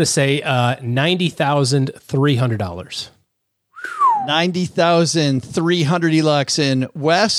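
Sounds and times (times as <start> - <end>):
speech: 0.0 - 3.2, 4.2 - 7.3
person whistling: 3.8 - 4.4.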